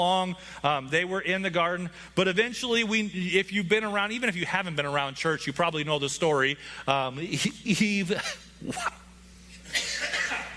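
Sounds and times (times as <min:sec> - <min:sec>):
speech: 0:00.0 - 0:09.0
person coughing: 0:08.1 - 0:09.0, 0:09.6 - 0:10.5.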